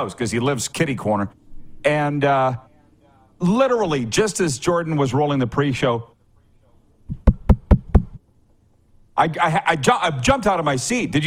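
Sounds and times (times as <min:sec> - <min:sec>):
speech: 0:00.0 - 0:02.7, 0:03.4 - 0:06.1, 0:09.2 - 0:11.2
knocking on a house's front door: 0:07.1 - 0:08.2.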